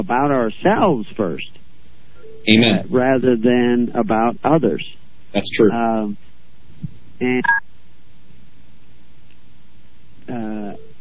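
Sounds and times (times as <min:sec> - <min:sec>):
quiet hiss: 0:00.0 - 0:10.9
speech: 0:00.1 - 0:01.7, 0:02.4 - 0:07.6, 0:10.3 - 0:10.9
electronic phone beeping tones: 0:02.2 - 0:02.8, 0:07.2 - 0:07.6, 0:10.4 - 0:10.9.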